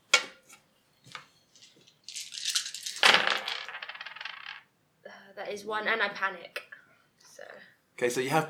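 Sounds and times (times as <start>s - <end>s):
dice tumbling and rattling across a hard table: 1.1s - 4.7s
dice clicking while handled during a tabletop role-playing game: 1.6s - 4.6s
speech: 5.4s - 6.6s, 8.0s - 8.4s.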